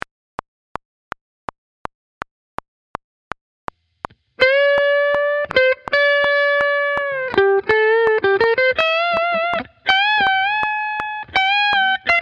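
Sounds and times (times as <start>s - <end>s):
guitar playing with expression: 4.1s - 12.2s.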